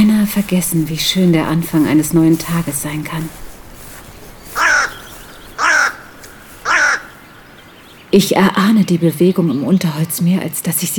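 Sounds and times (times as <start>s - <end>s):
speech: 0.3s - 3.5s, 8.1s - 10.9s
raven cawing on a fallen tree branch: 2.6s - 8.1s.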